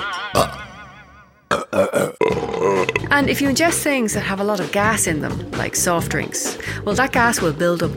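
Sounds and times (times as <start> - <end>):
person burping: 0.4 - 0.8, 1.5 - 3.3
speech: 3.1 - 7.9.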